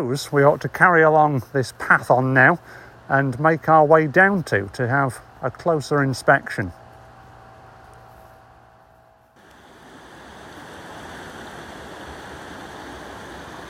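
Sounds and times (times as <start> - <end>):
speech: 0.0 - 6.8
river water flowing: 9.4 - 13.6.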